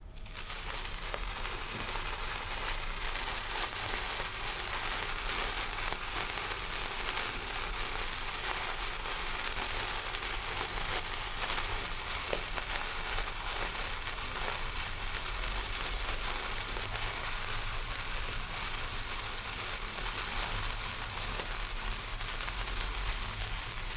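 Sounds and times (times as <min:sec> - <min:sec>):
handheld firework: 0:00.0 - 0:23.9.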